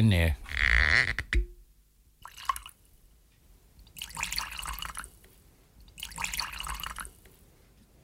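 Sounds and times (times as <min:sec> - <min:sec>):
speech: 0:00.0 - 0:01.2
whisky poured into glasses: 0:02.2 - 0:02.8, 0:03.8 - 0:05.2, 0:05.8 - 0:07.2.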